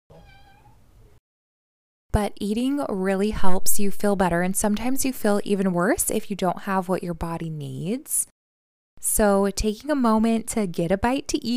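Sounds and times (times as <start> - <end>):
cat meowing: 0.1 - 0.8
speech: 2.1 - 8.3, 9.0 - 11.5.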